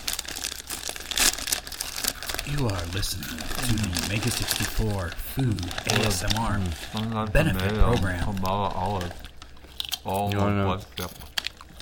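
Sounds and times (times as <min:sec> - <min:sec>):
bag of Totis chips crinkling as it is opened: 0:00.0 - 0:11.8
speech: 0:02.5 - 0:09.2, 0:10.0 - 0:11.2.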